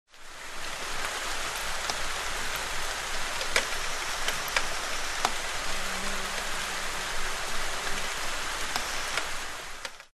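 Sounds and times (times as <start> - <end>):
rain: 0.1 - 10.1
fly buzzing: 4.0 - 9.3.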